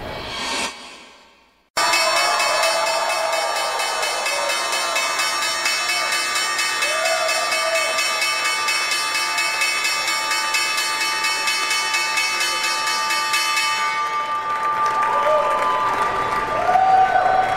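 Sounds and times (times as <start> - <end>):
crowd applause: 1.8 - 8.4, 13.8 - 17.5
electric opening bell ringing at the New York Stock Exchange: 1.8 - 15.2
crowd cheering: 1.8 - 17.5.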